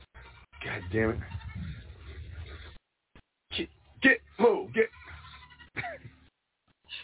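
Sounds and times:
speech: 0.8 - 1.4
goats bleating: 4.7 - 6.1.

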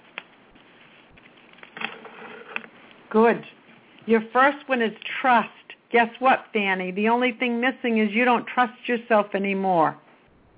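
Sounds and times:
deck of cards being shuffled with papery riffle: 0.0 - 3.0
speech: 3.1 - 10.0.

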